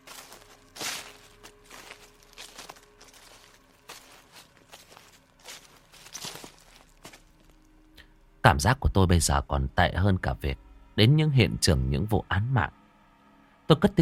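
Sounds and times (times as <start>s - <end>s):
footsteps rustling through dry leaves: 0.0s - 7.7s
speech: 8.5s - 12.8s, 13.7s - 14.0s.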